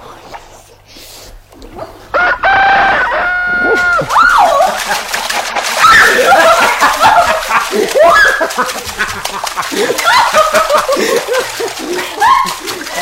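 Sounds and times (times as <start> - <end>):
rooster crowing: 2.1 - 4.6
laughter: 2.2 - 12.9.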